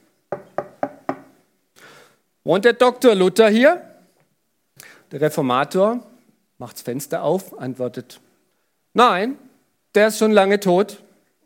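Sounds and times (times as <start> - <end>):
knocking on a wooden front door: 0.3 - 1.3
speech: 2.4 - 3.9, 4.8 - 8.2, 9.0 - 11.0.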